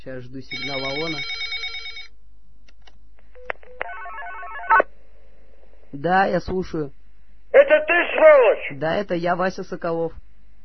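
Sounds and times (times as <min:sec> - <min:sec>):
speech: 0:00.0 - 0:01.6, 0:05.9 - 0:07.0, 0:07.9 - 0:10.2
telephone ringing with an incoming call: 0:00.5 - 0:02.1.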